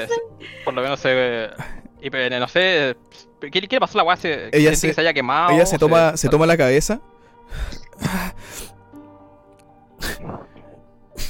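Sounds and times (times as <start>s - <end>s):
speech: 0.0s - 8.7s
voice imitating heavy gasping breaths: 7.4s - 8.8s, 10.0s - 11.2s.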